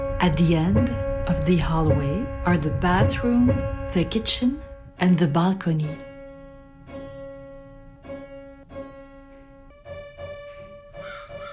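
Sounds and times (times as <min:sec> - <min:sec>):
speech: 0:00.2 - 0:06.1
crow cawing: 0:11.0 - 0:11.5.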